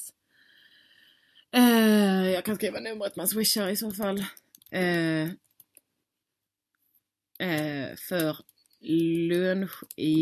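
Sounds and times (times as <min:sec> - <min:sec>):
speech: 0:02.4 - 0:05.5, 0:07.4 - 0:10.2
light computer keyboard typing: 0:03.6 - 0:05.8, 0:07.4 - 0:10.2.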